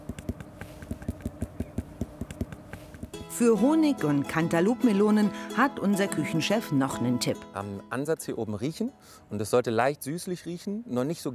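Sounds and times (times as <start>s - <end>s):
knuckles rapping a ripe watermelon to check ripeness: 0.0s - 3.1s
speech: 3.4s - 11.3s.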